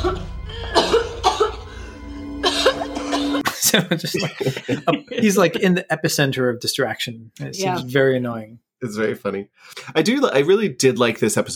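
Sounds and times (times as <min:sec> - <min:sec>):
woman coughing in the other room: 0:00.0 - 0:01.7, 0:02.4 - 0:03.5, 0:04.2 - 0:05.3
laughter: 0:02.8 - 0:06.1
speech: 0:03.7 - 0:11.5.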